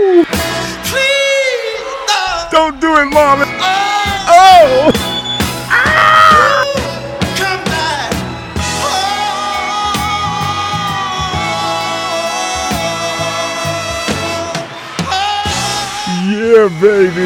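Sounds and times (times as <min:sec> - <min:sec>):
full band with steady bass and drums: 0:00.1 - 0:17.2
man screaming: 0:04.3 - 0:04.9, 0:05.7 - 0:06.8.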